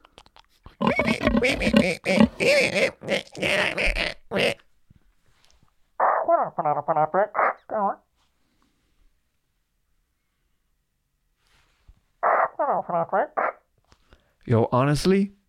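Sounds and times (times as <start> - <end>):
person imitating pig oinking with nasal grunts: 0.7 - 4.6, 6.0 - 8.0, 12.2 - 13.6
speech: 1.0 - 4.6, 6.5 - 8.0, 12.6 - 13.4, 14.5 - 15.4.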